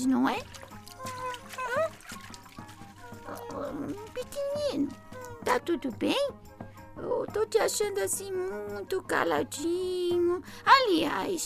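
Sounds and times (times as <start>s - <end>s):
speech: 0.0s - 0.6s, 4.7s - 6.4s, 7.0s - 11.4s
light water splashing and dribbling: 0.0s - 5.6s
water poured into a small container for a bird to wash: 0.3s - 5.2s.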